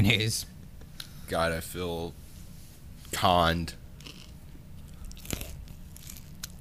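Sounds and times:
speech: 0:00.0 - 0:00.5, 0:01.3 - 0:02.2, 0:03.1 - 0:03.8
crunch of biting a crispy chicken sandwich with Cheetos and mayonnaise: 0:04.0 - 0:06.5
softer crackly chewing: 0:04.0 - 0:06.5.

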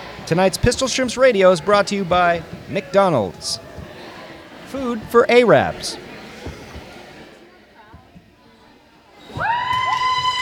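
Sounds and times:
large crowd cheering: 0:00.0 - 0:07.4, 0:09.2 - 0:10.4
large crowd murmuring and shouting: 0:00.0 - 0:10.0
speech: 0:00.3 - 0:03.7, 0:04.7 - 0:06.0
shrill sustained whistle-like screams: 0:09.2 - 0:10.4.

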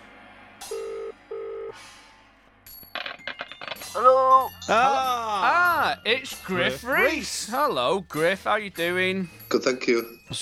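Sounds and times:
ringback tone of a dialled phone call to a Welsh number: 0:00.7 - 0:01.8
speech: 0:03.9 - 0:10.4.

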